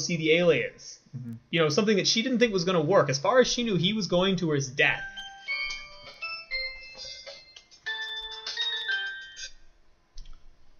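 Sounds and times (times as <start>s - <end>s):
speech: 0.0s - 5.1s
mobile phone ringtone with bright melodic electronic chime: 5.1s - 9.5s.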